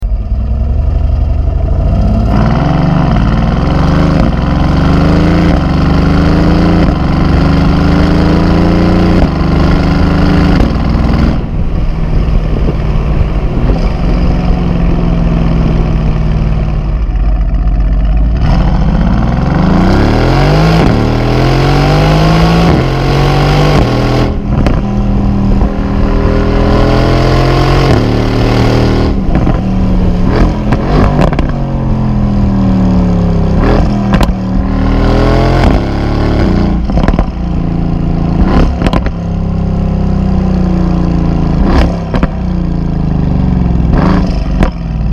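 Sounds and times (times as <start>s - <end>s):
Mercedes GT engine: 0.0s - 45.1s.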